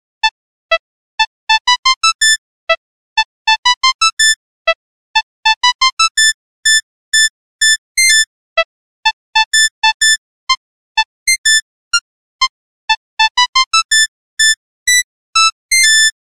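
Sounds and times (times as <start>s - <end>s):
mono ringtone: 1.2s - 2.4s, 3.2s - 8.3s, 9.0s - 16.2s.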